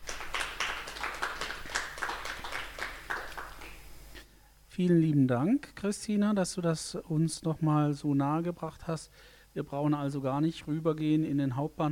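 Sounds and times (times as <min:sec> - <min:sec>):
audience applause: 0:00.0 - 0:03.8
speech: 0:04.8 - 0:11.8.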